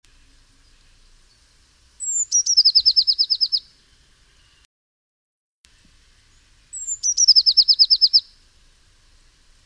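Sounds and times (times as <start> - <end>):
Eurasian blue tit Cyanistes caeruleus song: 0.2 - 4.7, 6.1 - 9.6.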